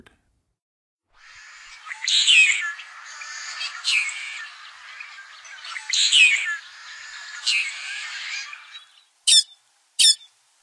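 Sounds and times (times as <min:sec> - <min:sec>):
Tricolored Blackbird singing: 0:01.3 - 0:10.3.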